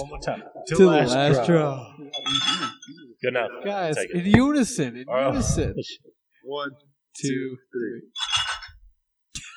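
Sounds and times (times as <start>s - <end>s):
speech: 0.0s - 8.3s
glasses clinking in a toast: 2.1s - 3.0s, 8.2s - 8.8s.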